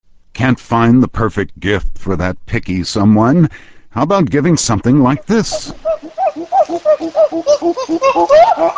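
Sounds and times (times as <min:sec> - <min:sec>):
speech: 0:00.4 - 0:08.7
male chimpanzee food call pant hoots in Tanzania: 0:05.5 - 0:08.7.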